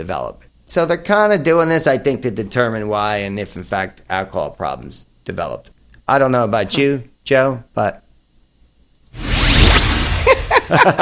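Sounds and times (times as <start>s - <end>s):
speech: 0.0s - 8.0s, 10.7s - 11.0s
swoosh transition effect: 9.2s - 10.6s.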